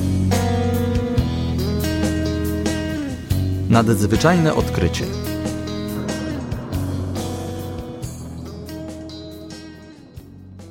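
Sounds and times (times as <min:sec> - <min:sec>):
bus engine drone with low rumble and tonal whine: 0:00.0 - 0:10.7
speech: 0:03.7 - 0:05.2
faint rattles inside a bus: 0:04.7 - 0:10.4.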